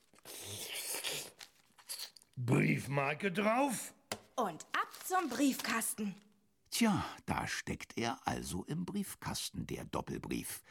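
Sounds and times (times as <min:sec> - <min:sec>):
speech: 0:02.4 - 0:10.7
paper envelope holding letters crinkling as it is sealed shut: 0:04.7 - 0:06.2.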